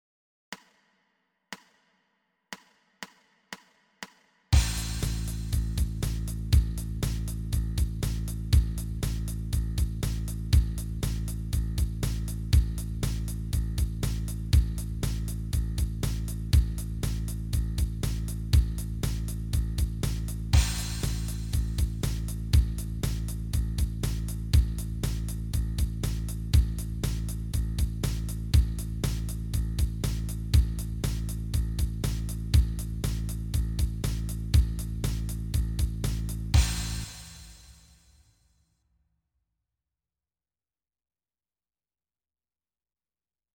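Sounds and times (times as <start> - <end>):
bass startup sound: 4.6 - 37.7.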